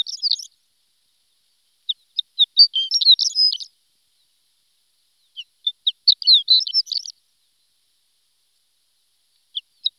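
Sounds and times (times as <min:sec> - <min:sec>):
horned lark song with high twittering and tinkling chirps: 0:00.0 - 0:00.6, 0:01.8 - 0:04.4, 0:05.1 - 0:07.2, 0:09.3 - 0:09.9.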